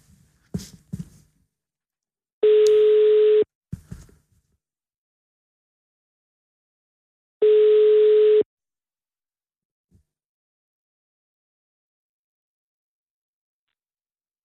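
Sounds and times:
outgoing phone call ringing tone: 2.4 - 3.5, 7.4 - 8.5.

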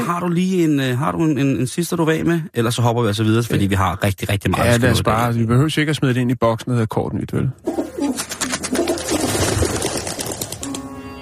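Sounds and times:
speech: 0.1 - 8.3
pigeons cooing: 7.6 - 10.3.

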